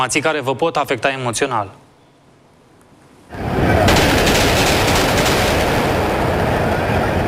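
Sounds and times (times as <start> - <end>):
speech: 0.0 - 1.8
loud rapid gunfire in a city street: 3.8 - 6.7.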